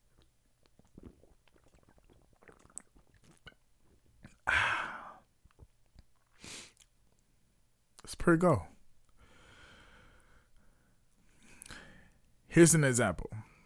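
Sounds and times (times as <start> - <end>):
mouth and swallowing noises while sipping an alcoholic drink: 0.0 - 4.4, 5.4 - 6.9
loud breathy slurp or exhale after a sip: 0.8 - 3.5
short breathy gasp: 4.5 - 5.2, 9.2 - 10.5
speech: 8.2 - 8.7, 12.6 - 13.4.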